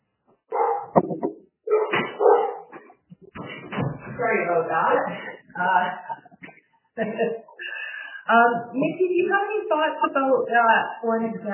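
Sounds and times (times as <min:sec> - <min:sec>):
dog barking: 0:00.5 - 0:01.0, 0:01.7 - 0:02.7
speech: 0:04.2 - 0:06.0, 0:07.0 - 0:07.5, 0:08.3 - 0:11.5.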